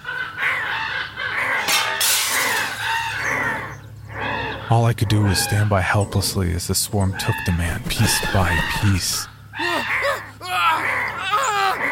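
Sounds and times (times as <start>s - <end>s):
chorus of harsh crow caws: 0.0s - 6.1s, 7.1s - 11.9s
glass shattering: 1.7s - 2.9s
speech: 4.7s - 9.3s.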